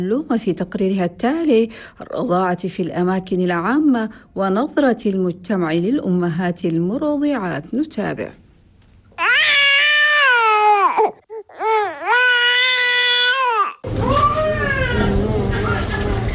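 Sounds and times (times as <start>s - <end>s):
speech: 0.0s - 8.4s
hungry baby crying wanting to breastfeed: 9.2s - 15.2s.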